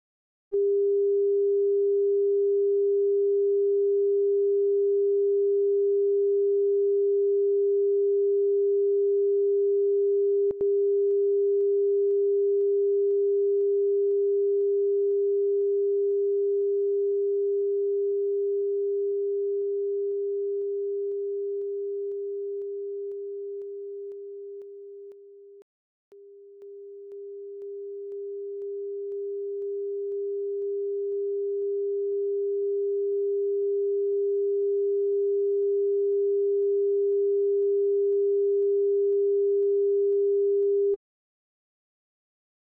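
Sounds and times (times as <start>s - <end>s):
401 Hz tone: 0.5s - 41.0s.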